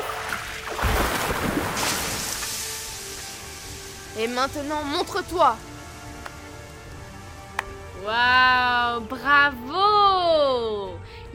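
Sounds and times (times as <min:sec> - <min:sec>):
crashing water rush from a water magic spell cast to put out flames: 0:00.0 - 0:08.1
speech: 0:04.2 - 0:05.7, 0:08.0 - 0:11.3.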